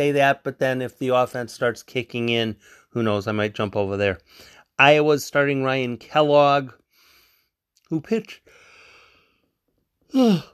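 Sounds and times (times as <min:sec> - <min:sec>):
speech: 0:00.0 - 0:06.8, 0:07.9 - 0:08.6, 0:10.1 - 0:10.5
man yawning: 0:10.1 - 0:10.5.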